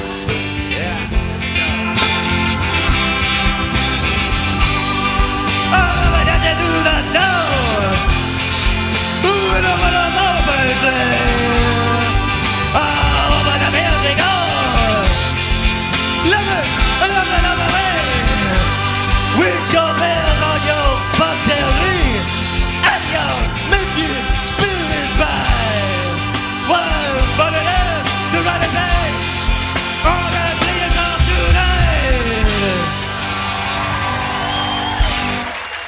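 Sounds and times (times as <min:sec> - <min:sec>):
loud live rock band playing on tour: 0:00.0 - 0:35.8
raw hoarse male vocal shouting lines: 0:05.7 - 0:08.1, 0:09.2 - 0:15.3, 0:16.2 - 0:29.2, 0:30.0 - 0:33.0.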